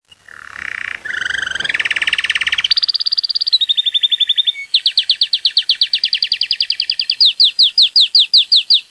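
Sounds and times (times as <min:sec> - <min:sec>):
canary singing: 0:00.0 - 0:08.8.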